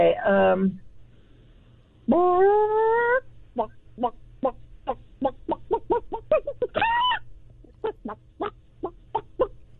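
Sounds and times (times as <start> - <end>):
speech: 0.1 - 0.8, 2.1 - 2.8, 3.6 - 7.2, 7.8 - 8.6
person doing a vocal chicken imitation with squawks and clucks: 2.1 - 9.6.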